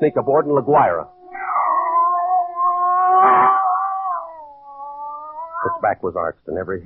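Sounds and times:
speech: 0.0s - 1.2s, 5.6s - 6.8s
scrawny cat yowling: 0.5s - 5.9s.

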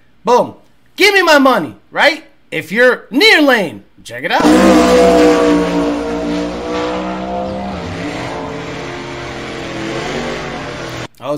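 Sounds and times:
speech: 0.2s - 6.0s
race car tire squeal: 4.4s - 11.1s
race cars accelerating in a street drag race: 4.4s - 11.1s.

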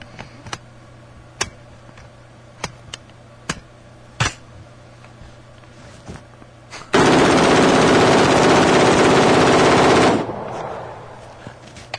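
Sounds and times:
test-fired machine gun firing bursts: 6.9s - 10.4s.

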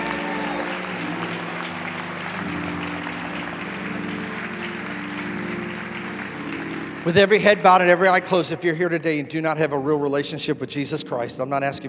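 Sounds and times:
church audience applauding: 0.0s - 9.1s
sustained organ or keyboard chords: 0.0s - 11.8s
speech: 7.0s - 11.8s.

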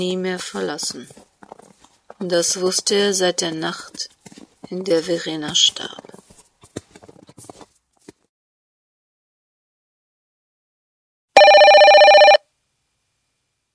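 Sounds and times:
speech: 0.0s - 1.2s, 2.2s - 6.1s
telephone bell ringing: 11.4s - 12.4s.

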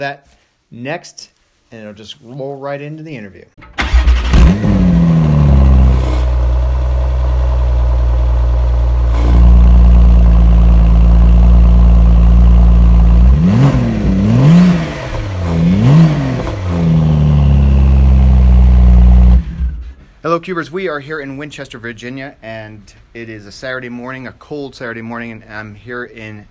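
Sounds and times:
speech: 0.0s - 3.8s, 20.3s - 26.4s
Porsche GT2 RS cold engine start revving: 4.0s - 20.0s.

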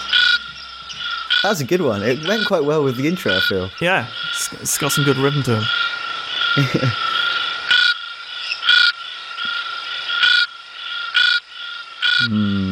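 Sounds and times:
constant high chorus: 0.0s - 5.6s
frog calling: 0.0s - 12.7s
speech: 1.4s - 5.8s, 6.6s - 7.0s
laughter: 6.6s - 7.3s.

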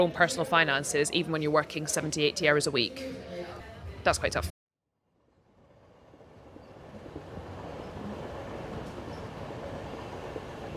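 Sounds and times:
speech: 0.0s - 3.3s, 4.0s - 4.5s
train wheels rolling on rails heard inside a carriage: 6.3s - 10.7s.

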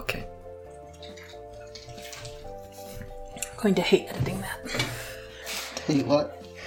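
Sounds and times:
water flowing: 0.2s - 4.7s
speech: 3.6s - 4.6s, 5.9s - 6.4s.

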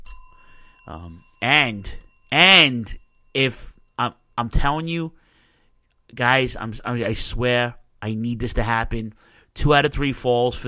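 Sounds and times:
wrestling ring bell ringing: 0.0s - 5.8s
speech: 0.9s - 5.2s, 6.1s - 10.6s.

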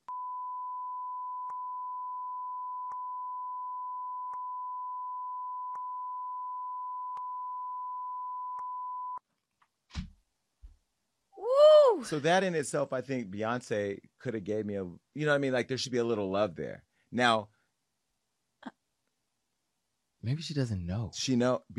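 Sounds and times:
censor bleep tone: 0.0s - 9.2s
speech: 12.0s - 17.6s, 20.2s - 21.7s.

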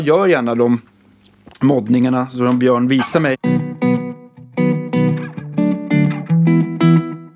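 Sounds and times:
speech: 0.0s - 0.9s, 1.6s - 3.5s
distorted electric guitar chords through slapback delay pedal: 3.4s - 7.3s.

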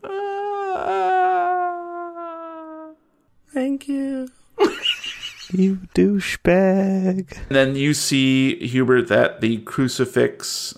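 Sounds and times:
woman wailing as she is released: 0.0s - 3.0s
speech: 3.8s - 10.7s
laughter: 4.6s - 5.8s.

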